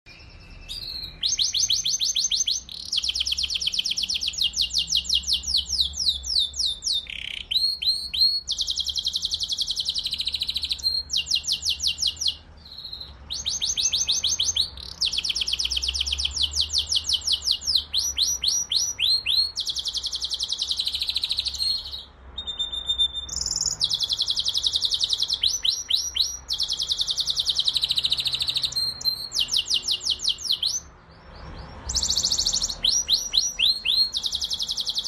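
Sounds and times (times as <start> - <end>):
male canary singing: 0.0 - 35.0.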